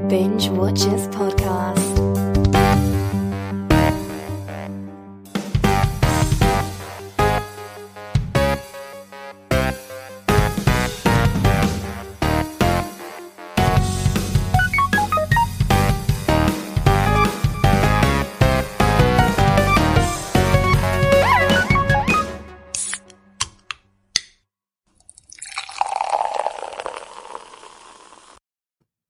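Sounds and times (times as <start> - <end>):
speech: 0.1 - 2.3
upbeat music: 0.2 - 23.4
liquid pouring into a glass: 25.0 - 28.4.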